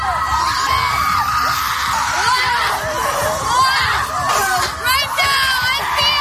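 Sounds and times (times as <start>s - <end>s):
group of women screaming and yelling at a wellness retreat in the United States: 0.0s - 6.1s
sticks beating on ground in dull rhythmic thuds: 4.2s - 5.4s.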